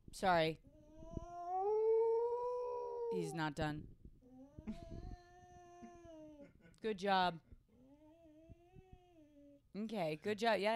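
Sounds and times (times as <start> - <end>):
speech: 0.2 - 0.7, 3.1 - 4.0, 4.7 - 5.1, 6.8 - 7.5, 9.8 - 10.7
dog howling: 1.3 - 3.3.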